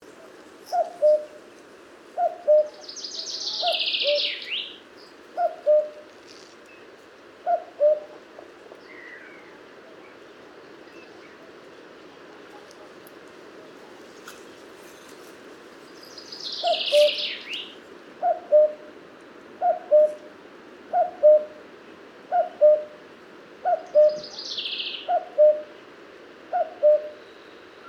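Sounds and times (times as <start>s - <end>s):
common cuckoo Cuculus canorus calling: 0.7s - 1.4s, 2.2s - 4.7s, 5.4s - 6.0s, 16.5s - 18.8s, 19.6s - 20.2s, 22.3s - 22.9s, 23.6s - 25.7s, 26.5s - 27.2s.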